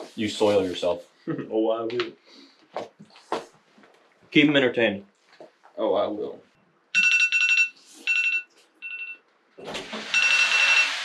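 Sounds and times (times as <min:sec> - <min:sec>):
speech: 0:00.2 - 0:03.2, 0:04.3 - 0:05.1, 0:05.8 - 0:06.5
shrill electronic alarm ringing: 0:06.9 - 0:09.2, 0:10.1 - 0:11.0.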